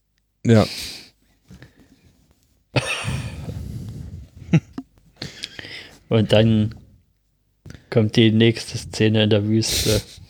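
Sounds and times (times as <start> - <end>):
speech: 0.4 - 1.0, 6.1 - 6.8, 7.9 - 10.2
person coughing harshly: 2.8 - 3.6.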